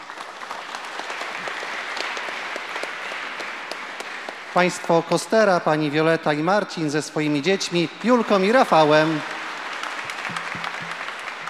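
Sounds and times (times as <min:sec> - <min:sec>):
audience applause: 0:00.0 - 0:06.4, 0:07.2 - 0:11.4
speech: 0:04.6 - 0:09.4.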